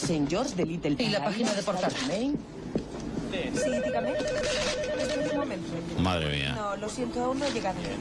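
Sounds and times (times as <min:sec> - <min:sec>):
speech: 0:00.1 - 0:02.7, 0:03.3 - 0:07.9
telephone ringing with an electronic trill: 0:03.6 - 0:05.8.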